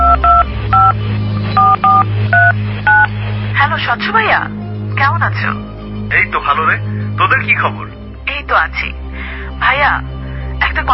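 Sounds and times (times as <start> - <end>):
phone number dialed on a keypad with dual-tone beeps: 0.0 - 0.9, 1.6 - 3.1
speech: 3.9 - 9.0, 9.6 - 10.9.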